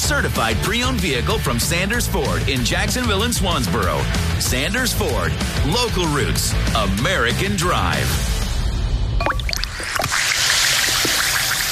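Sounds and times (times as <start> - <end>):
speech: 0.1 - 8.3
Alka-Seltzer effervescent tablets fizzing in water: 9.2 - 11.7
drips and splashes of water: 9.2 - 11.7.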